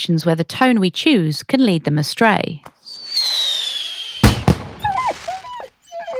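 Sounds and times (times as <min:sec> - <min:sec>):
speech: 0:00.0 - 0:03.5
long descending firework whistle: 0:02.8 - 0:05.6
loud sharp firework bangs: 0:03.0 - 0:05.5.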